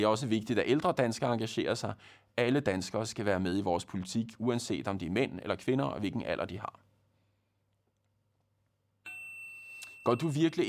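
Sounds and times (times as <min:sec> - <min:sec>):
speech: 0:00.0 - 0:06.9, 0:10.0 - 0:10.6
phone SMS text message notification chime: 0:09.1 - 0:10.6.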